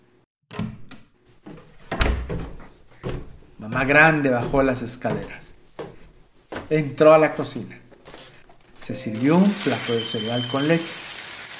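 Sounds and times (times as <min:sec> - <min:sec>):
bathroom door handle rattling: 0:01.8 - 0:06.0
bathroom door thudding shut: 0:01.9 - 0:05.4
speech: 0:03.6 - 0:05.5, 0:06.7 - 0:07.8, 0:08.9 - 0:11.0.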